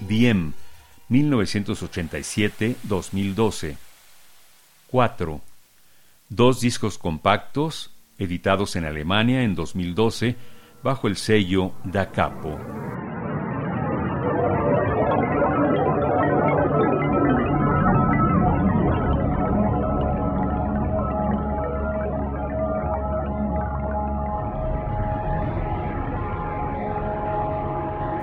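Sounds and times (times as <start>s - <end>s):
sustained tonal lines in dense electronic music: 0.0s - 3.8s, 9.0s - 28.2s
speech: 0.1s - 3.8s, 4.9s - 5.5s, 6.3s - 13.1s
thick rumbling drone-like texture: 10.8s - 28.2s.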